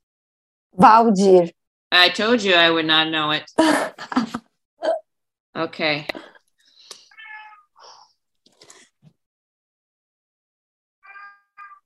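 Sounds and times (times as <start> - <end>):
speech: 0.7 - 5.0, 5.6 - 6.3
male pet cat meowing: 7.1 - 7.8, 11.0 - 11.8.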